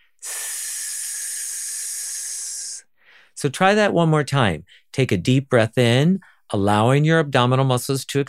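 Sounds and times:
person hissing while exhaling through the teeth: 0.0s - 2.9s
speech: 3.4s - 8.2s.

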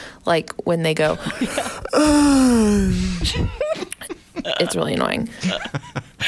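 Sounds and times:
speech: 0.2s - 3.6s, 4.4s - 6.2s
person imitating a loud drawn-out yawn: 1.8s - 3.6s
laughter: 3.3s - 6.2s.

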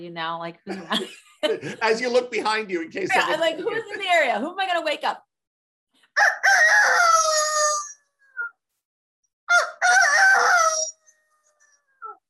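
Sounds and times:
speech: 0.0s - 5.3s, 6.2s - 7.3s
laughter: 0.7s - 4.5s
person imitating rooster crowing: 6.2s - 8.0s, 9.5s - 10.9s.

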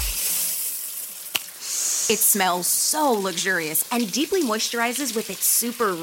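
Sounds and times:
water splash or drip: 0.0s - 0.6s
shower water hissing and spraying: 0.0s - 6.0s
speech: 2.1s - 6.0s.

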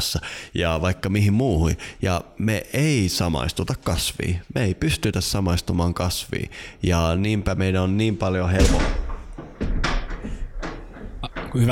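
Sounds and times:
speech: 0.0s - 9.0s
cabin door blown violently open by the wind, banging: 8.5s - 11.6s.

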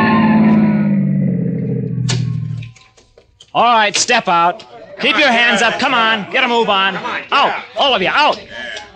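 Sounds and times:
loud police car engine roaring: 0.0s - 2.7s
speech: 3.6s - 8.8s
laughter: 4.5s - 8.9s.

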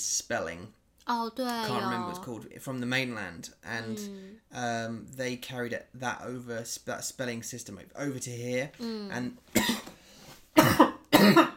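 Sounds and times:
speech: 0.0s - 9.8s
person coughing: 9.6s - 9.9s, 10.6s - 11.5s.

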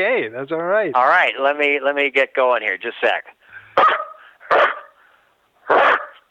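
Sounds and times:
speech: 0.0s - 4.0s
person imitating dog barks: 3.8s - 5.0s, 5.6s - 6.2s.

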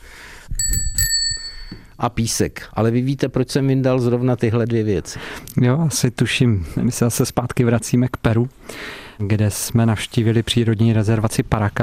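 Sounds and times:
bicycle bell ringing: 0.6s - 2.0s
speech: 2.0s - 11.8s.

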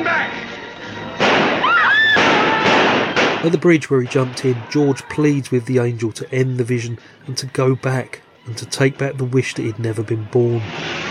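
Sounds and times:
gunshots in a 1946 drama film: 1.0s - 4.7s
speech: 3.4s - 11.1s.

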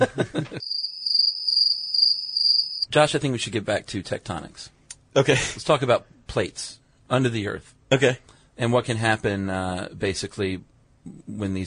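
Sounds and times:
speech: 0.0s - 0.5s, 2.9s - 11.6s
laughter: 0.0s - 0.6s
crickets chirping: 0.6s - 2.9s.

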